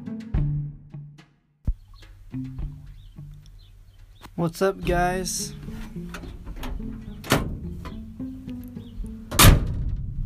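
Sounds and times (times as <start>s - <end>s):
speech: 2.3s - 2.7s, 4.4s - 5.6s
pickup truck door slamming shut: 5.6s - 8.1s, 9.2s - 10.2s.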